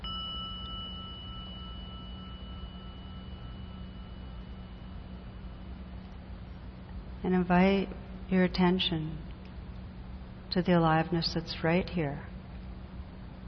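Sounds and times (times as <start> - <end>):
gong ringing: 0.0 - 5.5
speech: 7.2 - 9.2, 10.5 - 12.3.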